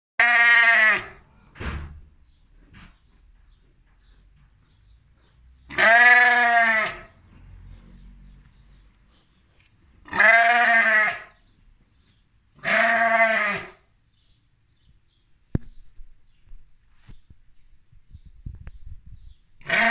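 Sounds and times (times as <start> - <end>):
sheep: 2.9 - 13.8, 19.6 - 19.8.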